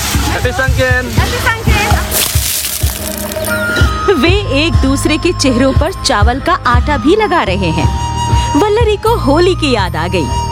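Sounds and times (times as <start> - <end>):
speech: 0.4 - 1.5, 3.3 - 10.4
water splashing from buckets thrown over people at a Buddhist festival: 1.2 - 3.7.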